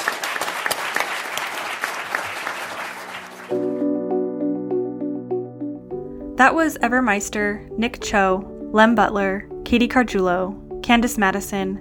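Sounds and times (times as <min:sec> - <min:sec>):
audience applause for panelists: 0:00.0 - 0:03.7
tonal music: 0:03.4 - 0:11.7
speech: 0:06.4 - 0:11.7.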